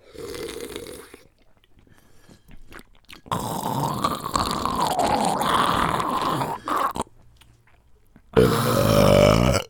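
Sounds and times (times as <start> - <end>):
long loud rumbling burp: 3.3 - 7.0, 8.4 - 9.6
deep throaty belch: 3.3 - 7.1, 8.4 - 9.6.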